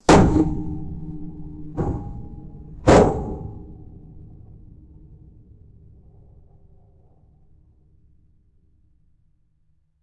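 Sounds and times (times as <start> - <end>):
heavy reverberant hollow metal impacts: 0.0 - 4.3.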